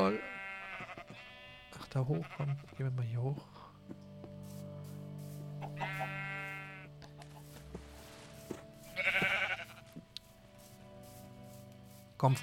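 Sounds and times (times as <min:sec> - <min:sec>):
speech: 0:00.0 - 0:00.3, 0:02.0 - 0:04.0, 0:12.2 - 0:12.4
video game sheep bleating: 0:00.0 - 0:03.0, 0:05.6 - 0:07.6, 0:08.8 - 0:10.0.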